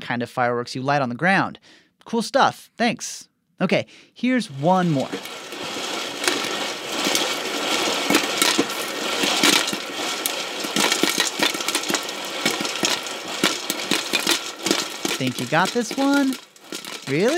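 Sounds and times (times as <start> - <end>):
speech: 0.1 - 5.4, 15.2 - 16.5, 17.1 - 17.3
spinning popcorn maker rattling whir: 4.4 - 17.3.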